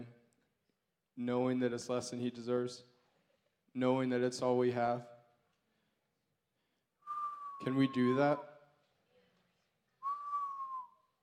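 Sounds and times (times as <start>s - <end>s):
speech: 1.2s - 2.9s, 3.7s - 5.1s, 7.6s - 8.5s
person whistling: 7.0s - 8.5s, 10.0s - 11.2s.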